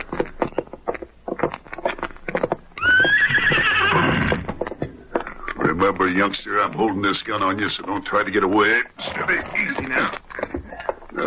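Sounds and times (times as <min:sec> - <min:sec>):
sharp rhythmic horse hoof clip-clops: 0:00.0 - 0:11.2
loud horse whinny with a high wavering squeal: 0:02.8 - 0:04.6
speech: 0:05.9 - 0:10.2.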